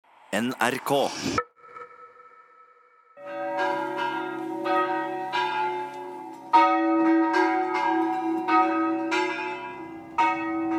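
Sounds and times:
speech: 0.3s - 1.5s
church bells pealing: 3.2s - 10.7s.

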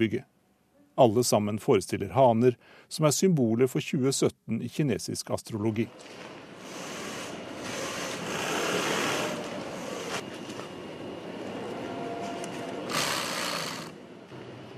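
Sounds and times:
speech: 0.0s - 0.3s, 1.0s - 6.4s
sewing machines whirring in an inflatable rooster factory: 5.9s - 10.3s, 11.8s - 14.0s
rapid stitching bursts of sewing machines: 6.6s - 10.2s, 12.9s - 14.0s.

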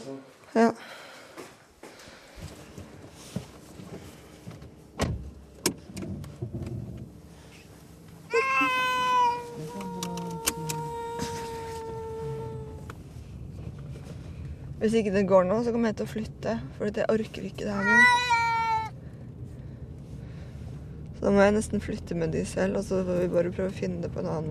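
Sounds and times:
speech: 0.1s - 1.0s, 14.8s - 18.3s, 21.2s - 24.4s
cats meowing in carriers: 8.3s - 12.9s, 17.8s - 18.9s.

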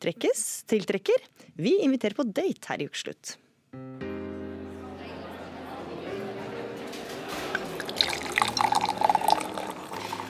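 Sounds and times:
speech: 0.0s - 4.0s
murmur of chatter in a restaurant: 4.3s - 10.2s
drink poured into a glass in a restaurant: 7.5s - 10.2s.

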